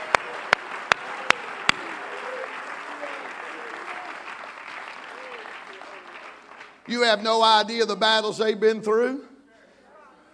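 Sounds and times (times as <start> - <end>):
crowd clapping in unison: 0.0 - 7.6
speech: 6.9 - 9.3.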